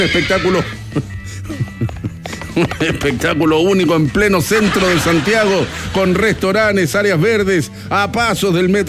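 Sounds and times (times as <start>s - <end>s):
horse neighing at the races: 0.0s - 0.9s
speech: 0.0s - 2.0s, 2.6s - 8.8s
laughter: 0.4s - 3.4s, 4.0s - 6.5s
horse hoof thuds at the races: 1.6s - 3.2s.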